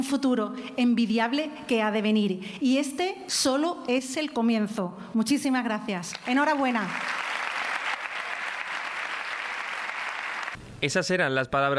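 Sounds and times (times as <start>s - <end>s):
speech: 0.0s - 7.2s, 10.8s - 11.7s
large audience applauding: 6.4s - 10.6s.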